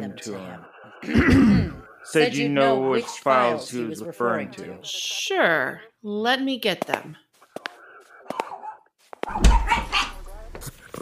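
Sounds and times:
speech: 0:00.1 - 0:07.2, 0:09.3 - 0:09.7
light clicks and yips: 0:07.6 - 0:10.2
dog barking sharply in alert: 0:08.1 - 0:10.5.

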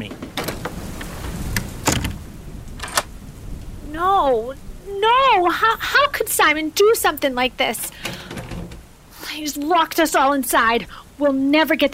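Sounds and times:
crackling thunder: 0:00.0 - 0:09.2
low constant rumble of a storm: 0:00.0 - 0:11.9
steady rain: 0:00.0 - 0:11.9
speech: 0:04.3 - 0:08.2, 0:09.4 - 0:11.9.

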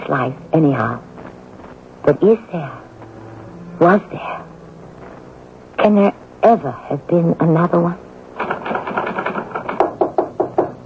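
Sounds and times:
speech: 0:00.1 - 0:01.1, 0:02.0 - 0:02.8, 0:03.8 - 0:04.4, 0:05.8 - 0:08.0
mechanical typewriter keystrokes: 0:08.4 - 0:09.9.

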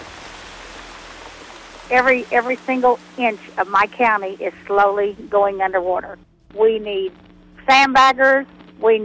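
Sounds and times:
heavy rain from a super outbreak storm across the south: 0:00.0 - 0:06.0
speech: 0:01.9 - 0:09.0.

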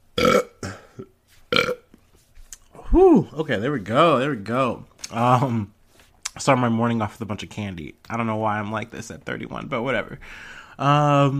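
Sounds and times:
loud raspy burps: 0:00.2 - 0:01.9
speech: 0:02.9 - 0:05.8, 0:06.4 - 0:11.3
soft breathy noises: 0:10.2 - 0:10.8.

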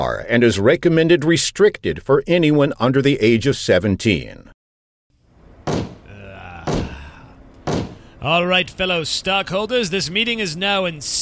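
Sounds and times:
speech: 0:00.0 - 0:04.6, 0:08.2 - 0:11.2
head banging on a table during a stockholders' meeting: 0:05.7 - 0:07.0, 0:07.7 - 0:08.0.

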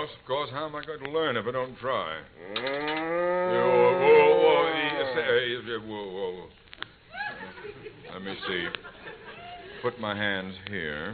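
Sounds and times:
speech: 0:00.0 - 0:06.6, 0:08.1 - 0:08.9, 0:09.8 - 0:11.1
cow mooing in a barn during morning milking: 0:02.4 - 0:05.3
laughter: 0:07.1 - 0:10.0.

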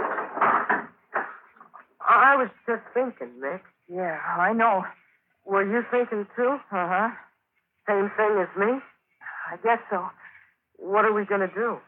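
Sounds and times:
hangar door closing thud: 0:00.0 - 0:01.5
speech: 0:02.3 - 0:07.3, 0:07.9 - 0:08.9, 0:09.5 - 0:10.2, 0:10.8 - 0:11.8.

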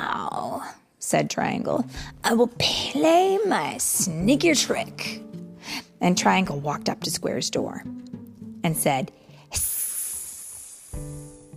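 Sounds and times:
speech: 0:01.1 - 0:05.2, 0:06.0 - 0:08.0, 0:08.6 - 0:09.7
voice imitating a snake's hiss: 0:09.5 - 0:11.5.

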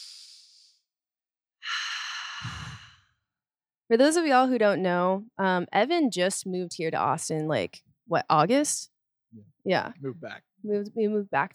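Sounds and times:
deep breath taken in a pause during talk: 0:01.6 - 0:03.0
speech: 0:03.9 - 0:11.5.

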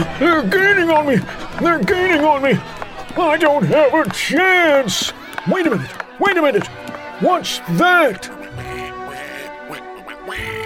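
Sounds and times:
laughter: 0:00.0 - 0:10.6
speech: 0:00.2 - 0:08.4
loud nasal raspy duck quacking: 0:08.1 - 0:10.6.

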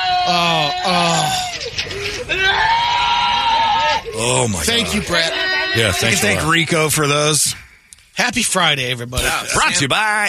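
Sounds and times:
badly injured man screaming in anguished wails: 0:00.0 - 0:01.6, 0:02.3 - 0:06.4
speech: 0:00.3 - 0:02.8, 0:04.1 - 0:07.6, 0:08.3 - 0:10.2.

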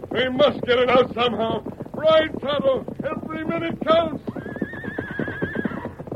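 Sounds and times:
hooves of running horses pounding: 0:00.0 - 0:06.1
speech: 0:00.2 - 0:04.4
stagecoach horse whinnying: 0:03.8 - 0:06.1.

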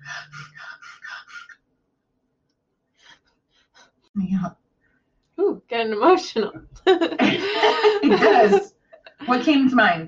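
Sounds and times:
person demonstrating a rhythmic breathing pattern: 0:00.0 - 0:01.6, 0:03.0 - 0:04.1, 0:07.2 - 0:08.1
speech: 0:04.2 - 0:04.6, 0:05.7 - 0:08.7, 0:09.3 - 0:10.0
laughter: 0:06.8 - 0:09.8.

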